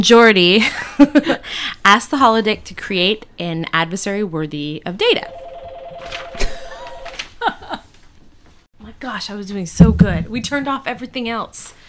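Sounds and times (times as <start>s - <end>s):
speech: 0.0s - 5.4s, 8.9s - 11.8s
telephone ringing with electronic warble: 5.3s - 7.3s.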